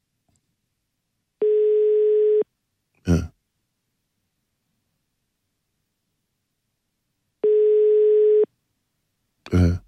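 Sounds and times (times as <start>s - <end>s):
ringback tone of an outgoing phone call: 1.4s - 2.4s, 7.4s - 8.5s.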